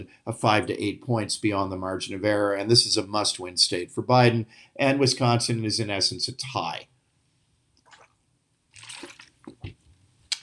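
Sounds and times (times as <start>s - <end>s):
speech: 0.0s - 7.0s
person gulping water: 7.8s - 8.2s, 8.8s - 10.4s
person sipping and slurping water: 7.8s - 8.2s, 8.8s - 10.4s.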